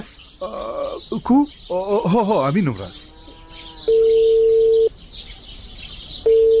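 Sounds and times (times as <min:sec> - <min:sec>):
speech: 0:00.0 - 0:03.1
faint high chirping: 0:00.0 - 0:06.5
ringback tone of an unanswered phone call: 0:03.9 - 0:04.9, 0:06.3 - 0:06.5.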